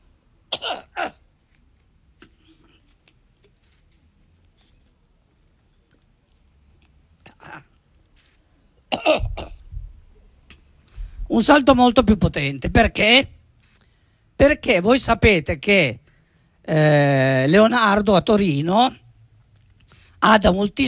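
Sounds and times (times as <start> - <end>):
person coughing: 0.5 - 1.2, 8.9 - 9.6
speech: 11.4 - 13.4, 14.4 - 16.0, 16.7 - 19.0, 20.2 - 20.8.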